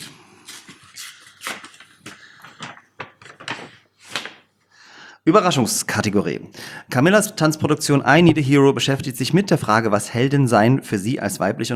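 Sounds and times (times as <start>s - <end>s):
paper envelope being opened: 0.6s - 4.5s
speech: 5.3s - 11.7s.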